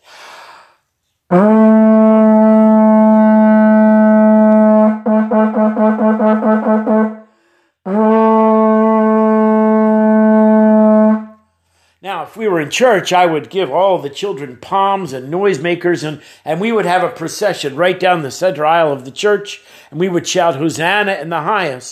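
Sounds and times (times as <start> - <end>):
speech: 1.3 - 1.8, 12.2 - 21.9
plastic vuvuzela horn blaring: 1.3 - 7.3, 7.9 - 11.4.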